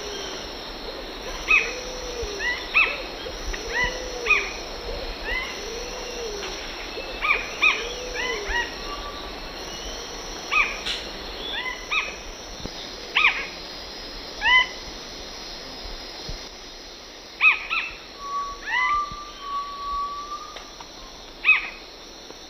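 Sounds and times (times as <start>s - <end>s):
two Synallaxis gujanensis birds singing in South American eastern lowlands: 1.4s - 12.1s, 17.4s - 21.8s.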